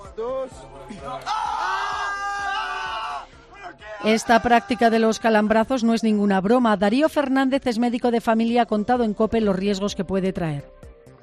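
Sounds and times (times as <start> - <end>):
speech: 0.2 - 1.6, 4.0 - 10.9
several boys yelling and screaming: 1.0 - 5.4.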